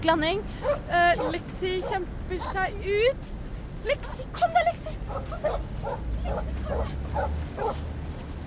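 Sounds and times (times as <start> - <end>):
speech: 0.0 - 7.9
dog yipping and whimpering: 0.6 - 2.6, 5.1 - 7.8.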